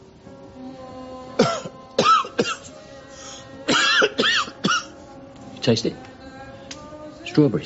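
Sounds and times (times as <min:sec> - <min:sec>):
harsh coughing: 0:01.4 - 0:02.7, 0:03.7 - 0:05.0
speech: 0:05.6 - 0:06.1, 0:07.4 - 0:07.6.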